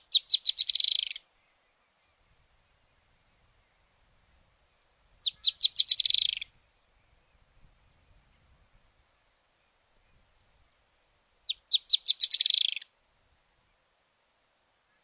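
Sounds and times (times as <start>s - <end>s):
firewood-gatherer Anumbius annumbi accelerating chatter: 0.1s - 1.2s, 5.2s - 6.5s, 11.5s - 12.8s.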